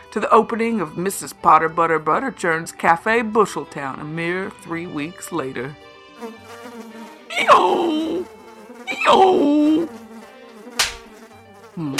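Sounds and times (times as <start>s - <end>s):
speech: 0.1s - 10.0s, 11.8s - 11.9s
fly buzzing: 6.2s - 11.9s.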